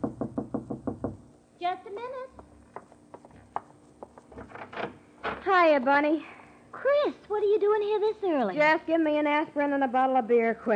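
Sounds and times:
firm loud knocks on a door: 0.0 - 1.3
speech: 1.6 - 2.4, 5.5 - 10.7
scattered clicks and taps: 2.3 - 4.4.

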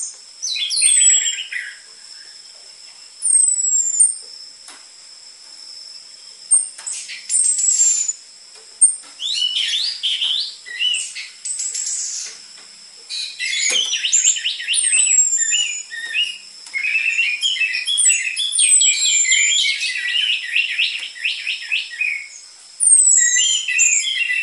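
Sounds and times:
orange-headed thrush singing varied whistles and twittering: 0.0 - 4.4, 5.8 - 8.2, 8.8 - 12.5, 13.1 - 24.4.

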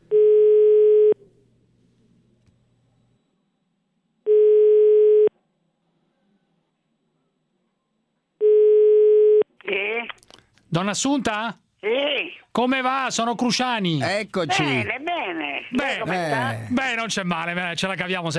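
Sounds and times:
telephone ringing tone while a call is placed: 0.1 - 1.2, 4.3 - 5.3, 8.4 - 9.4
speech: 10.7 - 18.3.

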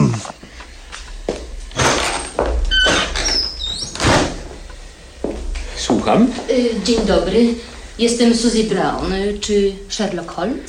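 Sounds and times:
door being opened: 1.0 - 4.8
door creaking squeak: 1.7 - 4.5
speech: 6.1 - 10.6.

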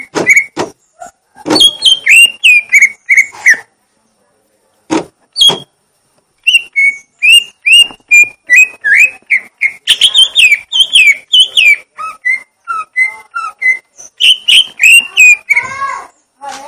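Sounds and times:
leafbird whistling: 0.0 - 0.6, 1.6 - 3.7, 5.4 - 5.7, 6.4 - 15.9.

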